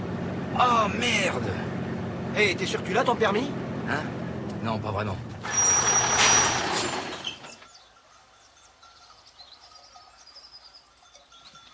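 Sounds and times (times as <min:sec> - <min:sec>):
speed-limited vehicle driving at 100 km/h on a departmental road: 0:00.0 - 0:07.9
speech: 0:00.6 - 0:01.7, 0:02.4 - 0:05.6.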